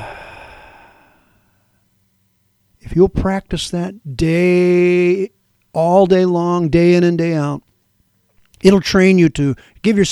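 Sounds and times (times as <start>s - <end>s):
deep exhale during a guided breathing exercise: 0.0s - 1.6s
speech: 3.0s - 7.7s, 8.6s - 10.1s.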